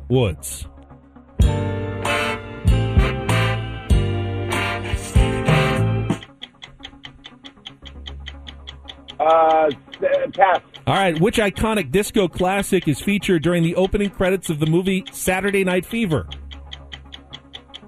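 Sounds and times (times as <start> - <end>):
speech: 0.1 - 0.7, 9.2 - 16.4
loud punchy game show countdown band music with strong bass and brass-like stabs: 1.4 - 6.3
steady ticking pulse of a game show clock: 1.4 - 17.8.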